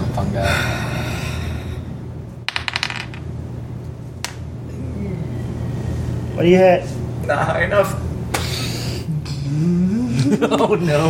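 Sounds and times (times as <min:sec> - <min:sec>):
steady low hum: 0:00.0 - 0:11.0
speech: 0:00.2 - 0:00.9, 0:06.4 - 0:08.1, 0:09.5 - 0:11.0
dice clattering onto a hard surface: 0:02.5 - 0:03.2.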